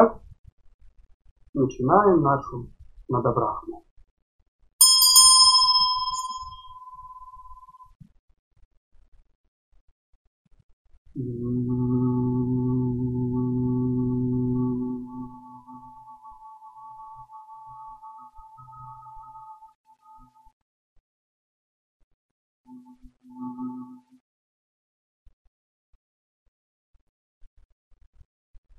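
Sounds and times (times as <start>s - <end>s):
speech: 1.6s - 3.9s, 11.2s - 12.0s
bright bell ringing: 4.8s - 7.8s
low steady meditative humming: 11.2s - 19.7s.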